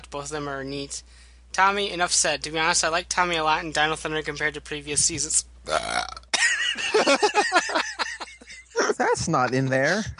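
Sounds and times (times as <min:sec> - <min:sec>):
speech: 0:00.1 - 0:06.2, 0:06.8 - 0:07.8, 0:09.0 - 0:10.1
long rough croaking belch: 0:05.7 - 0:06.4
laughter: 0:06.4 - 0:10.1.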